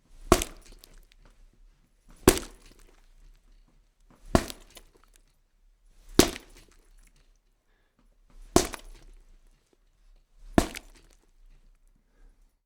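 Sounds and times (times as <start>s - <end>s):
punch hitting meat: 0.3s - 0.7s, 6.2s - 6.5s, 8.6s - 9.0s, 10.6s - 11.0s.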